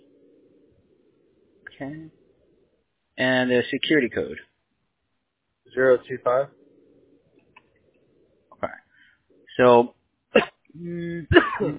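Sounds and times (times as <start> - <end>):
steady voiced hum: 0.0 - 11.7
speech: 1.7 - 2.2, 3.2 - 4.5, 5.7 - 6.6, 9.6 - 11.7
sneeze: 10.3 - 10.6.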